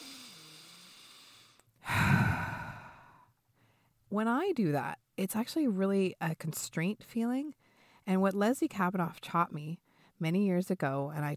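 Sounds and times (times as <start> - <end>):
breathy sigh: 0.0 - 3.3
slow deep breath in: 0.0 - 3.9
speech: 4.2 - 11.3.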